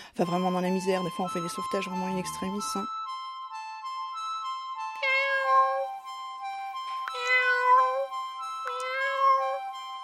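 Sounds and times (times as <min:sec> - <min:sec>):
speech: 0:00.2 - 0:02.9
ginger cat meowing: 0:05.0 - 0:05.9, 0:07.1 - 0:08.1, 0:08.7 - 0:09.7.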